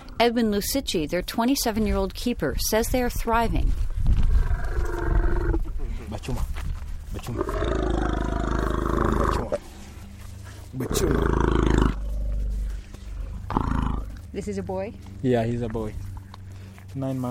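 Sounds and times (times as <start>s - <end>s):
speech: 0.2s - 4.2s, 6.2s - 6.5s, 7.1s - 7.9s, 9.2s - 9.7s, 10.8s - 11.5s, 14.4s - 16.0s, 17.0s - 17.2s
deep growling roars and rumbles of young elephants: 4.1s - 5.8s, 7.2s - 9.7s, 10.8s - 14.2s
young elephants calling in a dusty clearing in Kenya: 7.2s - 14.2s.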